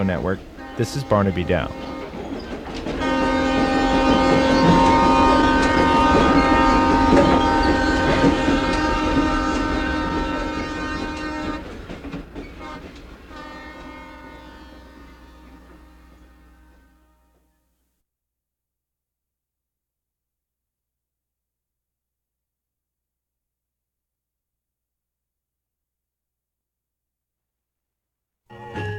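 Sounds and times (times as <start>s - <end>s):
speech: 0.0s - 1.9s
train horn blaring: 0.0s - 17.7s.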